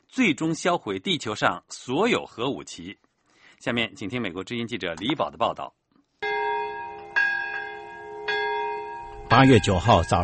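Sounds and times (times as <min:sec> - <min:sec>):
speech: 0:00.1 - 0:05.8, 0:09.3 - 0:10.2
large memorial bell tolling: 0:06.2 - 0:10.2.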